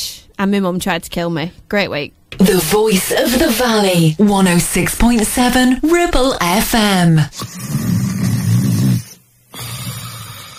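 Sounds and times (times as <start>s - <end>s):
speech: 0.4s - 7.9s
person snoring while asleep: 7.3s - 10.5s.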